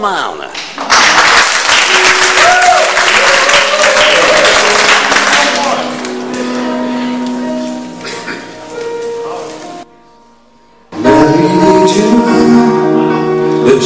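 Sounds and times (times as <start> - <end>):
speech: 0.0 - 1.2
room full of people applauding: 0.8 - 6.4
soft sustained instrumental tone: 4.2 - 13.8.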